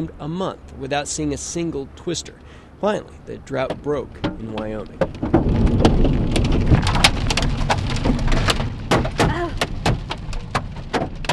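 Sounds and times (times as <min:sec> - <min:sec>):
speech: 0:00.0 - 0:06.2
steady roar of heavy precipitation in a storm: 0:00.0 - 0:11.3
hail hitting the metal and glass of a vehicle in a storm: 0:03.6 - 0:11.3.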